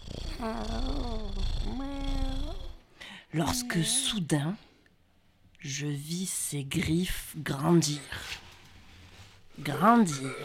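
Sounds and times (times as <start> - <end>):
cat purring while being petted on a sofa: 0.0 - 2.8
speech: 0.4 - 2.6, 3.3 - 4.7, 5.6 - 8.4, 9.6 - 10.4.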